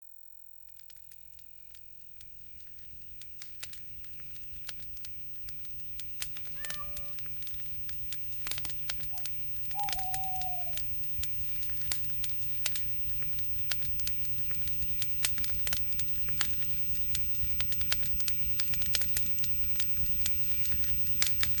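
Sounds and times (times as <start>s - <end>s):
forest night ambience: 0.7s - 21.5s.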